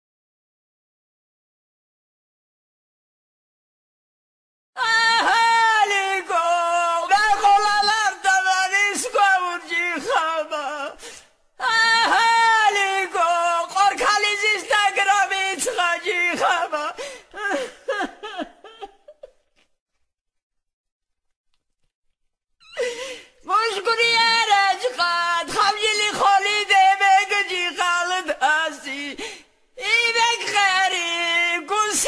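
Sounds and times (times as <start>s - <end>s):
Svan woman singing a lament: 4.8s - 11.0s, 11.6s - 19.4s, 22.6s - 32.0s.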